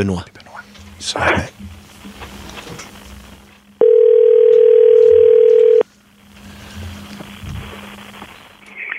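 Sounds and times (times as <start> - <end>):
telephone dial tone while a call is being placed: 3.8 - 5.8.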